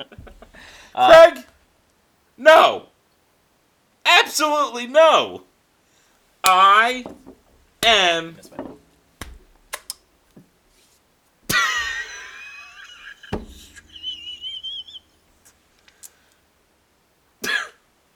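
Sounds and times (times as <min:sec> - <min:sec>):
speech: 0:00.0 - 0:01.5, 0:02.4 - 0:02.9, 0:04.1 - 0:05.5, 0:06.4 - 0:08.7
faint thin whistling tone: 0:13.4 - 0:15.2
man coughing harshly: 0:17.4 - 0:17.8.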